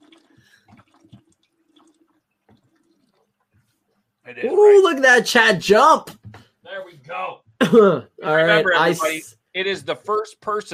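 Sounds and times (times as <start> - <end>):
person gulping water from a jug: 0.0 - 4.2
water sloshing in a jug: 0.0 - 4.2
speech: 4.3 - 6.2, 7.1 - 10.7.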